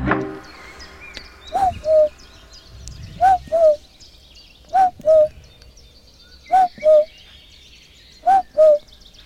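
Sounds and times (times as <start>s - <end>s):
faint birdsong at the edge of the Amsterdamse Waterleidingduinen dunes: 0.1s - 9.2s
person whistling an imitation of a cuckoo call: 1.6s - 2.1s, 8.3s - 8.8s.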